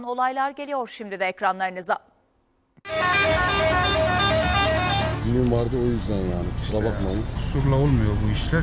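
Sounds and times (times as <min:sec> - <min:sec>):
speech: 0:00.0 - 0:02.1, 0:02.8 - 0:04.1, 0:05.3 - 0:08.6
vehicle air horn honking in traffic for a wedding: 0:02.9 - 0:05.4.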